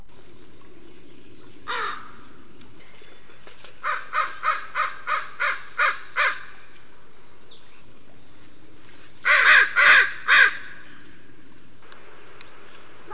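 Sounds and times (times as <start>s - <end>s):
American crow: 1.7s - 2.3s, 3.8s - 6.5s, 9.3s - 10.9s.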